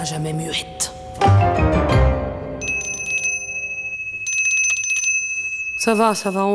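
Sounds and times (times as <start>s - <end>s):
speech: 0.1s - 1.4s, 5.8s - 6.5s
small bell ringing: 2.6s - 6.5s.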